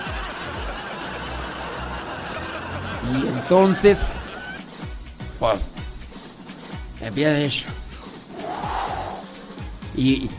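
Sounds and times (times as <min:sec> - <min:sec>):
laughter: 0:00.0 - 0:04.8
speech: 0:03.0 - 0:04.2, 0:05.5 - 0:05.7, 0:07.0 - 0:07.8, 0:10.0 - 0:10.3
voice imitating a bull snorting through the nose while eating: 0:08.3 - 0:09.4.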